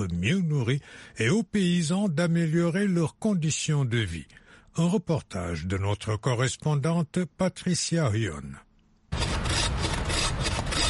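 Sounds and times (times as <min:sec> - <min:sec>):
speech: 0:00.0 - 0:08.6
hand saw cutting black wattle acacia wood in South Africa: 0:09.1 - 0:10.8.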